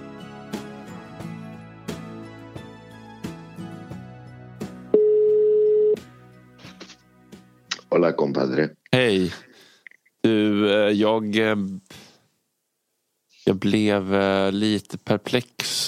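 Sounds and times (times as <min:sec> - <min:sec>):
telephone ringback tone while calling: 0:05.0 - 0:06.0
speech: 0:07.9 - 0:09.5, 0:10.3 - 0:12.0, 0:13.5 - 0:15.8.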